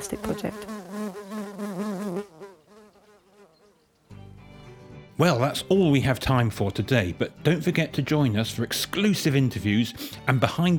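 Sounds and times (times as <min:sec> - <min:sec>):
speech: 0:00.0 - 0:01.4, 0:05.2 - 0:10.7
bees buzzing: 0:00.0 - 0:04.0.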